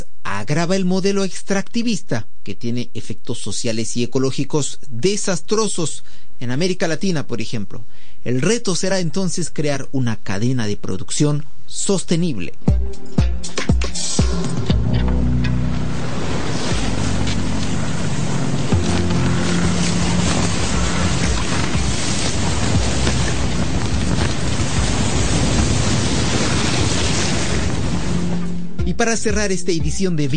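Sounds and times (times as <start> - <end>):
speech: 0.4 - 14.1, 29.0 - 30.3
low thumps: 12.7 - 29.4
wind and waves around a sailing ship in the South Atlantic Ocean: 14.3 - 28.8.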